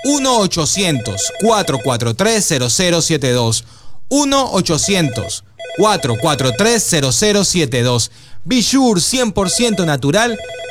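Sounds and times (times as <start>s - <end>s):
telephone ring tone after a number is dialed: 0.0s - 2.1s, 4.8s - 7.0s, 9.4s - 10.6s
speech: 0.0s - 10.6s.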